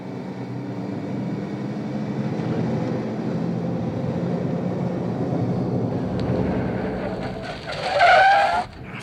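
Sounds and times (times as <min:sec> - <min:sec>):
car engine roaring at high speed during a chase: 0:00.0 - 0:09.0
tires squealing in a skid as the vehicle swerves: 0:05.8 - 0:09.0.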